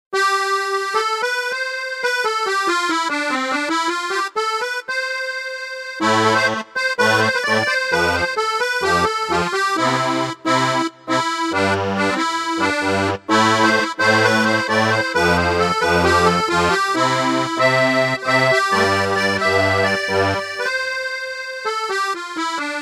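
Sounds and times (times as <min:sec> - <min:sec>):
Ketron musette music: 0:00.2 - 0:22.8.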